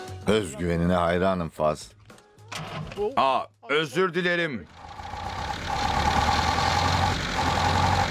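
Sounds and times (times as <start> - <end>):
speech: 0.3 - 2.0, 3.0 - 4.8
four-cylinder engine idling after its air filter was refitted: 4.7 - 8.0.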